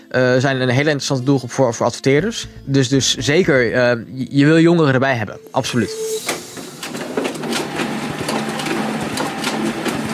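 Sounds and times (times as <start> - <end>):
speech: 0.1 - 6.3
photocopier running: 6.4 - 10.1.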